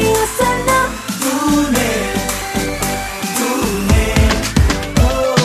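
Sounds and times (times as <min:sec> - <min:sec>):
Hindi ringtone: 0:00.1 - 0:05.3.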